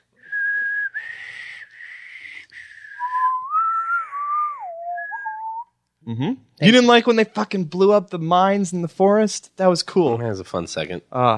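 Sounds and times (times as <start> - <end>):
person attempting to whistle: 0.2 - 5.7
speech: 6.1 - 11.3.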